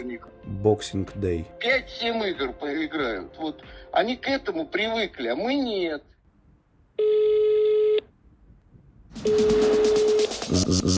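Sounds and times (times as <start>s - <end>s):
speech: 0.0s - 6.2s, 9.2s - 9.9s, 10.5s - 10.9s
telephone ringing tone for a call: 7.0s - 8.0s, 9.2s - 10.4s.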